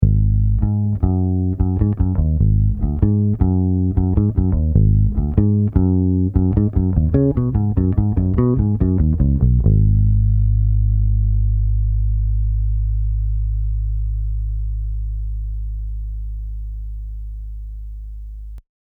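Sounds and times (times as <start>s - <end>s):
middle pickup solo: 0.0s - 18.6s.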